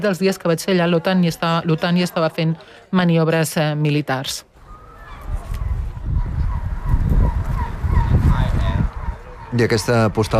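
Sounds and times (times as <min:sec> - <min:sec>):
speech: 0:00.0 - 0:04.5, 0:09.5 - 0:10.3
gulls crying in an Arctic harbour: 0:04.6 - 0:10.3
wind rumbling in an Arctic harbour: 0:04.6 - 0:10.3.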